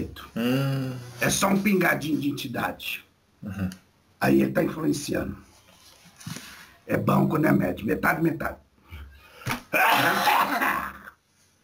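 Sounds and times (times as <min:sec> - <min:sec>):
speech: 0:00.0 - 0:05.5, 0:06.2 - 0:08.6, 0:09.7 - 0:10.6
man coughing: 0:09.8 - 0:11.1.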